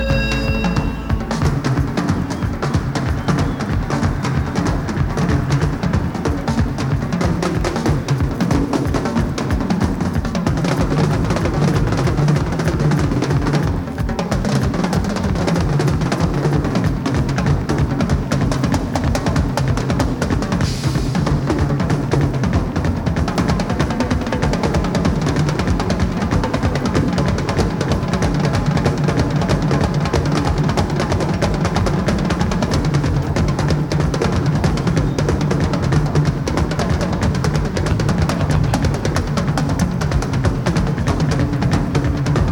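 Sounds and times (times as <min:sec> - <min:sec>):
drum duet: 0:00.0 - 0:42.5.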